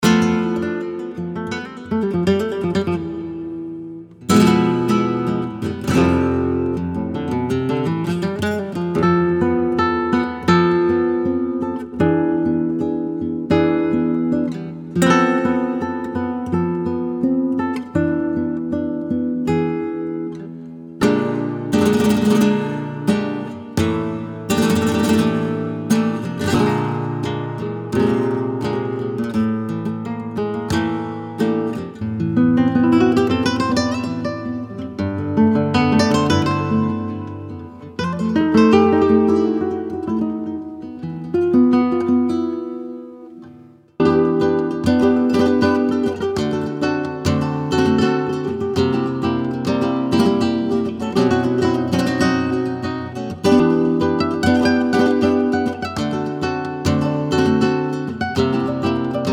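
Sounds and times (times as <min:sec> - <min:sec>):
classic flamenco guitars: 0:00.0 - 0:59.3.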